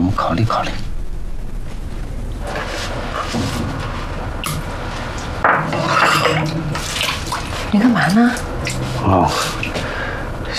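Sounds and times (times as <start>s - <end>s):
speech: 0.2s - 0.8s, 7.7s - 9.7s
running water: 2.4s - 10.5s
pots, pans and plates clinking and clattering while dishes are washed: 2.5s - 8.8s.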